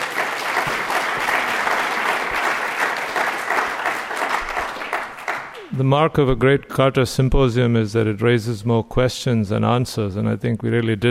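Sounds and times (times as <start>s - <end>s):
large audience applause: 0.0s - 5.8s
speech: 5.8s - 11.0s.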